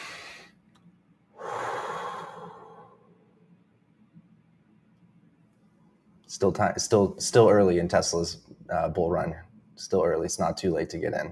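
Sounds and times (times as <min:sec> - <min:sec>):
deep breath in: 0:00.0 - 0:00.5, 0:01.4 - 0:03.2
speech: 0:06.3 - 0:11.2.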